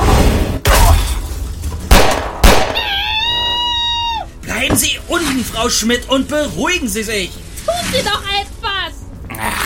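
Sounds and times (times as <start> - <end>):
dense rumbling background: 0.0 - 9.6
gunshots firing silver bullets: 1.9 - 2.9
speech: 4.8 - 8.5.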